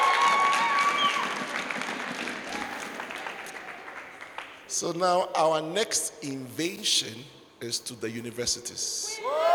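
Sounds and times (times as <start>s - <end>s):
audience applause at a gathering: 0.0s - 4.6s
speech: 4.8s - 9.4s.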